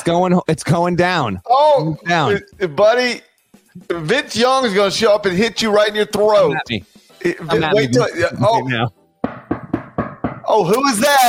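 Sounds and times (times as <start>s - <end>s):
speech: 0.0s - 9.0s, 10.5s - 11.2s
knocking on a front door: 9.2s - 10.6s.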